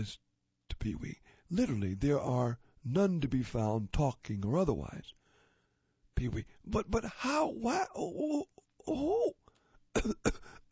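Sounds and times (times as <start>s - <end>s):
speech: 0.0s - 0.2s, 0.8s - 5.2s, 6.2s - 9.4s, 10.0s - 10.7s
person coughing harsh and raspy: 10.0s - 10.7s.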